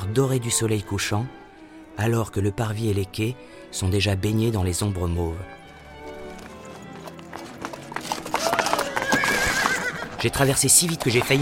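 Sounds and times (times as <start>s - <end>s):
speech: 0.1s - 5.6s, 10.2s - 11.4s
draft horses' hooves clopping on cobblestones: 4.7s - 11.4s
horse whinnying: 8.1s - 10.4s.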